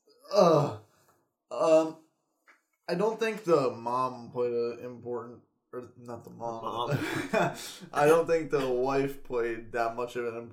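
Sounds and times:
person yawning with a drawn-out breathy sweep: 0.2 - 0.8
speech: 0.3 - 0.8, 2.9 - 10.5
laughter: 6.6 - 9.0.

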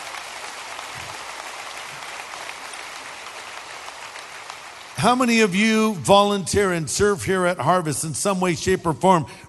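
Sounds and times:
large church audience applause: 0.0 - 5.9
speech: 5.0 - 9.4.

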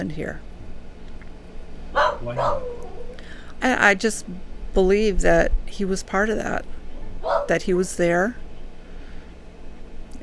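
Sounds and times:
speech: 0.0 - 0.5, 2.2 - 3.0, 3.6 - 6.8, 7.5 - 8.4
low hum: 0.0 - 10.2
dog barking in the next room: 1.9 - 3.2, 7.2 - 7.6.

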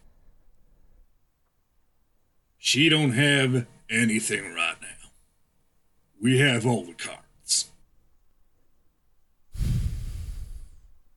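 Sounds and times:
speech: 2.7 - 4.7, 6.2 - 7.7
woman breathing heavily: 9.5 - 11.0.

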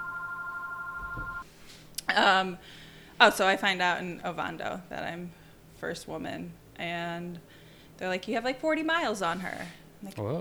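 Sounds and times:
telephone ringing with an electronic two-tone trill: 0.0 - 1.4
speech: 2.1 - 10.3.

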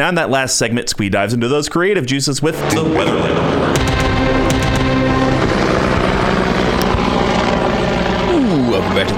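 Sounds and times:
speech: 0.0 - 4.5
helicopter rotor chop: 2.5 - 9.1.

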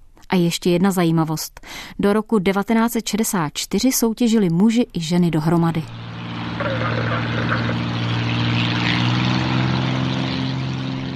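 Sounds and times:
speech: 0.3 - 6.0
Trener aerobatic propeller airplane engine droning: 5.9 - 11.1.

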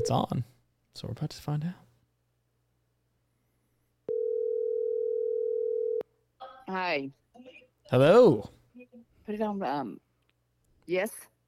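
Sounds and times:
speech: 0.0 - 1.8, 6.7 - 10.0, 10.9 - 11.3
electronic phone call ringing tone: 4.1 - 6.0.

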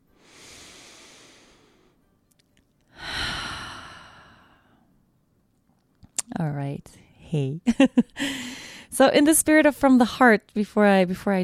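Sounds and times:
deep breath in and out: 0.1 - 2.0, 2.9 - 5.0, 8.2 - 8.9
speech: 6.4 - 11.4.

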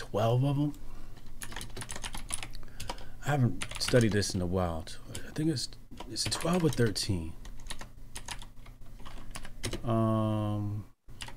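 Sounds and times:
speech: 0.1 - 0.9, 3.2 - 7.4, 9.8 - 10.9
fingers typing on a computer keyboard: 1.4 - 4.4, 6.0 - 9.9, 11.2 - 11.3.

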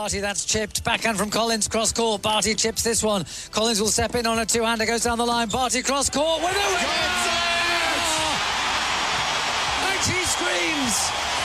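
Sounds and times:
speech: 0.0 - 8.2
big tennis arena crowd roaring and cheering: 6.2 - 11.4
individual voices shrieking and whooping in a tennis crowd: 6.4 - 11.4.

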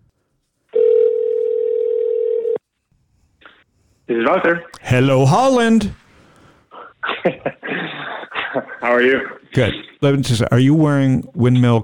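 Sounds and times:
telephone dial tone: 0.7 - 2.6
speech: 4.1 - 6.0, 7.2 - 7.8, 8.5 - 11.8
laughter: 6.8 - 9.5.

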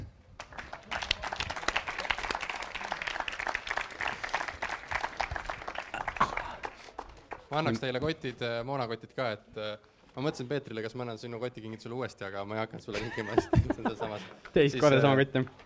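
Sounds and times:
audience applause: 0.4 - 7.5
speech: 7.5 - 15.6
laughter: 12.9 - 14.5.

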